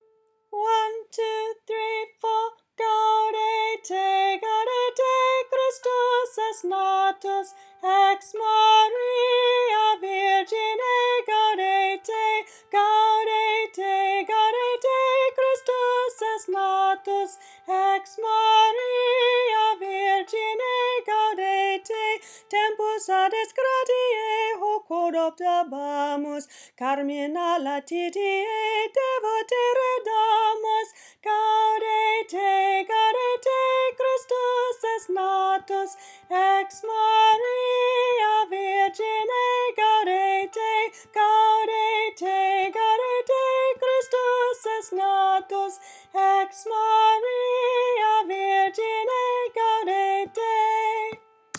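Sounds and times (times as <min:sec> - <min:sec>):
soprano singing a melody in a folk choir: 0:00.0 - 0:51.5.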